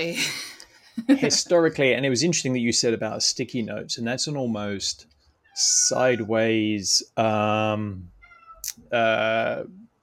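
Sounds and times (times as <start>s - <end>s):
speech: 0.0s - 0.4s, 1.0s - 9.8s
cat meowing: 5.4s - 6.4s, 8.1s - 8.8s.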